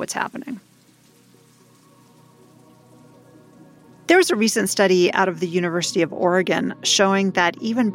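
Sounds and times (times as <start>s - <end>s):
speech: 0.0s - 0.7s, 4.1s - 7.9s
raindrops falling on a pond: 0.0s - 5.1s.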